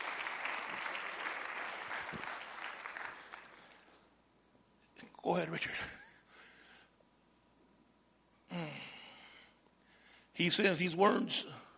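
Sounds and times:
crowd clapping: 0.0s - 4.1s
speech: 5.2s - 6.0s, 10.4s - 11.7s.

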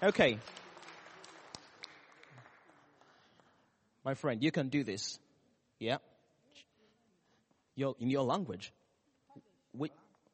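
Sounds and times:
speech: 0.0s - 0.6s, 4.0s - 5.2s, 5.8s - 6.7s, 7.8s - 8.8s, 9.8s - 10.0s
small audience clapping: 0.0s - 3.6s.

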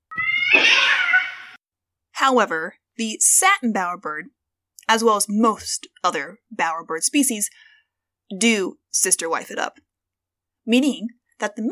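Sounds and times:
cat meowing: 0.1s - 1.6s
speech: 2.2s - 7.7s, 8.3s - 9.9s, 10.6s - 11.7s.

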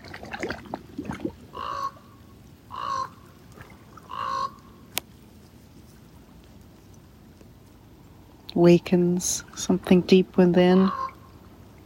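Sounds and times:
raven croaking: 1.1s - 3.4s, 4.0s - 4.8s, 10.8s - 11.8s
speech: 8.6s - 11.0s.

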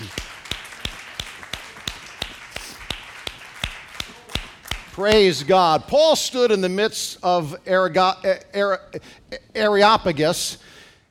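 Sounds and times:
steady rhythmic hand clapping: 0.0s - 5.7s
speech: 5.0s - 10.8s.

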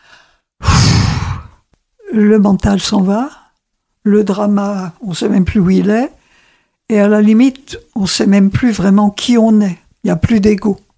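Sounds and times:
deep breath drawn in and let out in a breathy sigh: 0.0s - 1.6s, 6.2s - 6.8s
speech: 2.1s - 3.4s, 4.0s - 6.2s, 6.9s - 10.8s.

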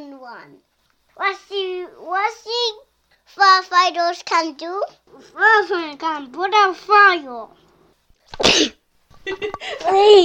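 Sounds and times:
speech: 0.3s - 7.6s, 8.3s - 10.2s
child's voice making drawn-out vocal sounds: 1.2s - 7.6s, 9.8s - 10.2s
person sneezing: 8.3s - 8.8s.

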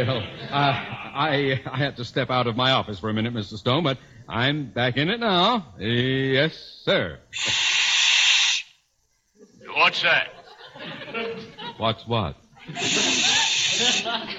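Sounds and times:
laughter: 0.0s - 1.5s, 9.4s - 12.0s, 12.6s - 14.3s
speech: 0.0s - 7.7s, 9.9s - 13.2s
hiss from a bad telephone connection: 7.3s - 8.8s, 12.7s - 14.3s.

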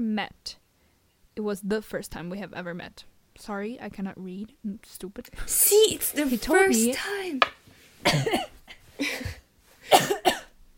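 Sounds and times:
speech: 0.0s - 0.6s, 1.4s - 10.1s
person coughing: 8.0s - 10.5s.

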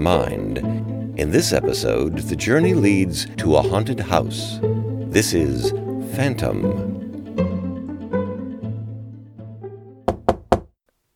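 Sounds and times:
speech: 0.0s - 6.9s
sustained tonal music: 0.0s - 10.0s
knocking on a door: 10.1s - 10.8s.

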